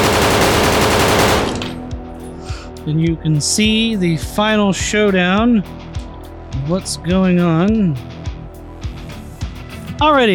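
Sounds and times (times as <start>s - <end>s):
rapid automatic gunfire in a video game: 0.0s - 1.8s
speech: 2.9s - 5.8s, 6.6s - 8.1s, 10.0s - 10.3s.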